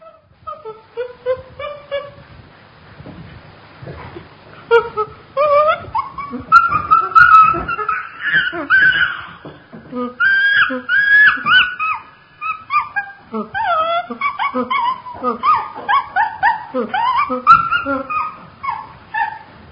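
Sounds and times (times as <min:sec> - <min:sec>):
chimpanzee hooting and whimpering cries: 0:04.7 - 0:19.5.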